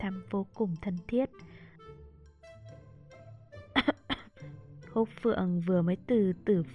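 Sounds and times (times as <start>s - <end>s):
speech: 0.0s - 1.7s, 5.0s - 6.7s
dry throaty cough: 3.8s - 4.3s.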